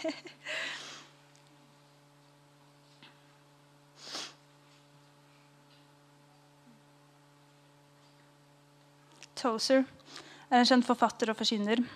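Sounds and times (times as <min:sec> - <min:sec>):
speech: 0:00.0 - 0:00.3, 0:09.4 - 0:11.9
steady low electrical hum: 0:00.0 - 0:11.9
breathy nasal sniffles: 0:04.0 - 0:04.4.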